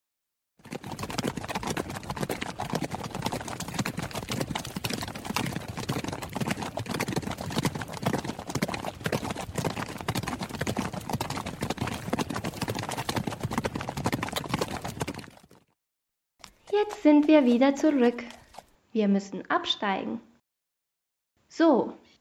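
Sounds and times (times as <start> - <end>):
galloping horse hoofbeats: 0.6 - 15.7, 16.4 - 18.8
speech: 16.8 - 18.4, 19.0 - 20.3, 21.5 - 22.0.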